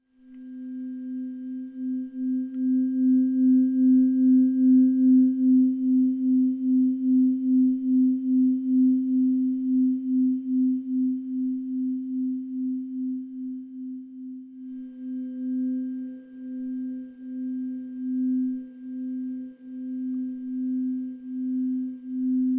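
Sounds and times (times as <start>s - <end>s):
delta wave tones of 1 Hz and 2 Hz tuning forks: 0.0s - 22.5s.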